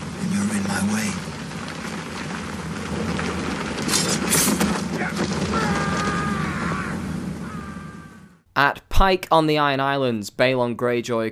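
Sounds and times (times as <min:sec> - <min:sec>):
dense rain hiss of a heavy storm: 0:00.0 - 0:08.3
deep rumble of thunder: 0:00.0 - 0:08.5
speech: 0:08.7 - 0:11.3.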